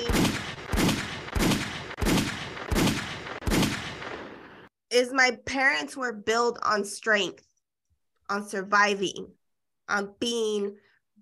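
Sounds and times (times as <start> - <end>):
gunshot sound effects: 0.0 - 4.7
speech: 5.0 - 7.5, 8.3 - 10.8.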